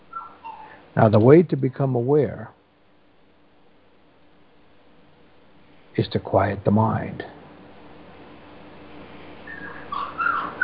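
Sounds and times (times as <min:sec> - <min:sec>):
soft hiss: 0:00.0 - 0:10.6
small puppy whimpering: 0:00.1 - 0:00.8, 0:09.4 - 0:10.6
speech: 0:01.0 - 0:02.6, 0:06.0 - 0:07.4.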